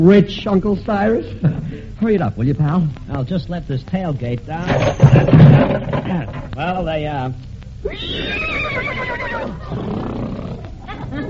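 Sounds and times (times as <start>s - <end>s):
speech: 0.0s - 10.2s
quiet noise: 0.0s - 11.2s
laughter: 1.2s - 2.0s, 10.8s - 11.2s
horse neighing: 7.8s - 11.2s.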